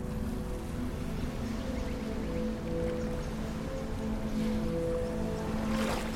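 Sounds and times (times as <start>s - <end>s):
ocean waves ebbing and flowing: 0.0s - 6.1s.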